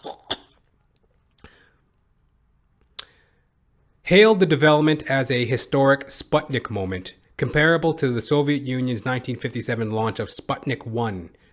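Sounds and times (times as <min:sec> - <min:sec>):
person coughing: 0:00.0 - 0:00.7
speech: 0:04.1 - 0:11.5.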